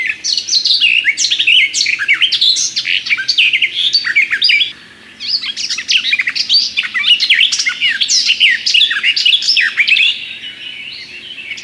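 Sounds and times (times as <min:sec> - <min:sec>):
Garden warbler singing: 0:00.0 - 0:11.6.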